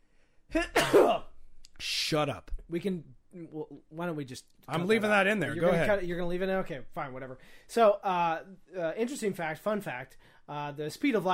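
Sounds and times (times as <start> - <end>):
loud sneeze: 0.5 - 1.4
speech: 0.5 - 11.3.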